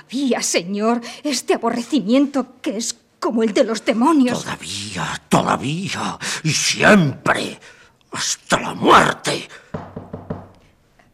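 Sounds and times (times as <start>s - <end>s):
speech: 0.1s - 9.6s
knocking on a door: 9.7s - 10.6s.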